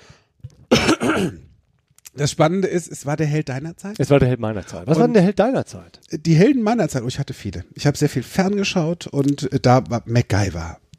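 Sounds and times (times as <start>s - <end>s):
person clearing throat: 0.7s - 1.6s
person coughing sharp and raspy: 0.7s - 1.6s
speech: 1.2s - 1.5s, 2.2s - 10.8s.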